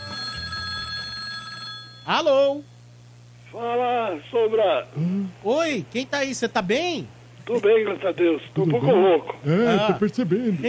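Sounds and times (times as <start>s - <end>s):
telephone ringing with an electronic trill: 0.0s - 2.5s
speech: 2.1s - 2.7s, 3.5s - 10.6s.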